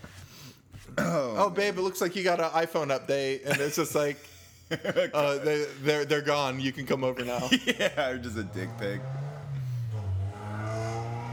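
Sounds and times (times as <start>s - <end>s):
speech: 1.0s - 9.2s
laughter: 3.4s - 9.0s
car engine revving loudly outside: 7.2s - 11.3s.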